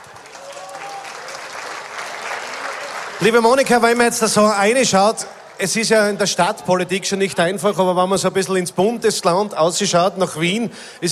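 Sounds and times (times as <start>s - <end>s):
audience applause at a civic gathering in Kapfenberg: 0.0s - 4.1s
speech: 3.2s - 11.1s.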